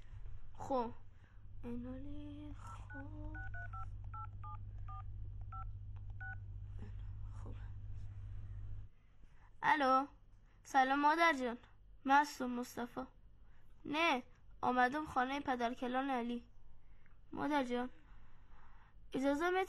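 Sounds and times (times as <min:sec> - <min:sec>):
constant low hum: 0:00.0 - 0:09.7
speech: 0:00.6 - 0:01.0, 0:01.6 - 0:04.0, 0:09.6 - 0:13.2, 0:13.8 - 0:16.5, 0:17.3 - 0:18.0, 0:19.1 - 0:19.6
telephone keypad dialing beeps to call someone: 0:02.9 - 0:06.4.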